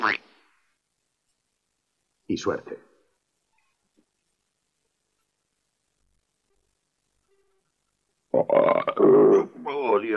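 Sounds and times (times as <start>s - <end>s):
speech: 0.0s - 0.3s, 2.3s - 2.9s, 8.4s - 10.1s
loud rumbling burp: 8.3s - 9.6s.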